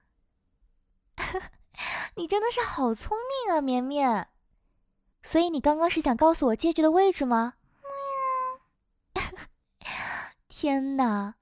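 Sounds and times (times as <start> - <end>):
speech: 1.3 - 1.6, 2.2 - 4.3, 5.2 - 7.6, 10.6 - 11.4
pet cat meowing: 7.9 - 8.6.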